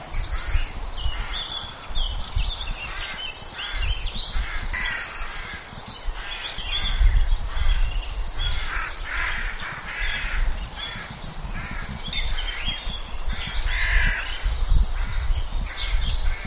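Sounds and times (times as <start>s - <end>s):
bird harsh raspy caw-like calls: 0.0s - 16.4s.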